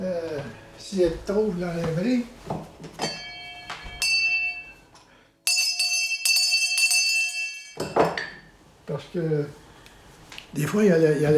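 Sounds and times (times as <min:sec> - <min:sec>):
speech: 0:00.8 - 0:02.8, 0:09.2 - 0:09.6, 0:10.5 - 0:11.3
small hand bell ringing to call for meals: 0:03.0 - 0:04.8, 0:05.5 - 0:08.0.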